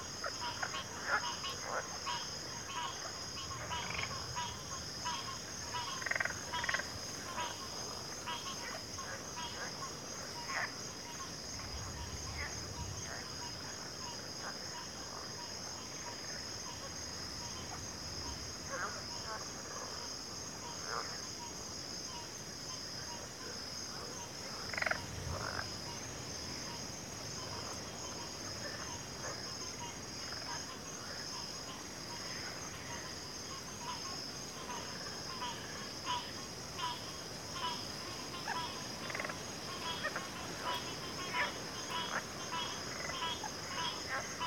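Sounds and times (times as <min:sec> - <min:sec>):
frogs calling in a wetland field: 0:00.0 - 0:44.4
steady high insect trill in a wetland field: 0:00.0 - 0:44.4.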